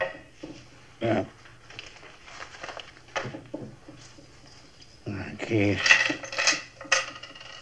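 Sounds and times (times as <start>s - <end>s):
speech: 1.0s - 1.4s, 5.5s - 6.0s
keys and coins clattering onto a hard table: 4.4s - 7.6s.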